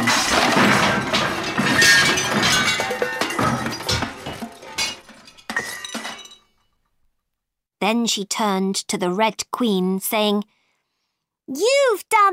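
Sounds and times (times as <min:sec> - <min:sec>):
broken crockery and glass shards clattering and tinkling: 0:00.0 - 0:06.6
plates, dishes, candles and spoons pulled off a table by the tablecloth crashing to the floor: 0:00.0 - 0:06.6
speech: 0:07.8 - 0:10.6, 0:11.5 - 0:12.3.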